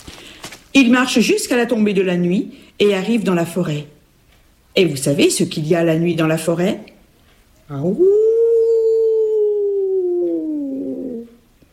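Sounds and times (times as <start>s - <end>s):
speech: 0.8s - 4.0s, 4.8s - 6.9s, 7.7s - 8.2s
wolf howling at night in a forest: 7.9s - 11.4s.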